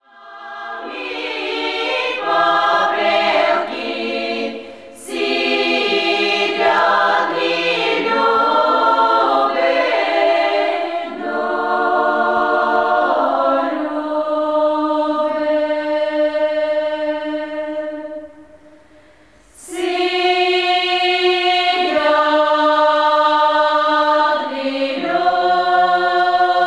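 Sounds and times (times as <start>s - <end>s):
female choir singing: 0.0s - 18.8s, 19.6s - 26.6s.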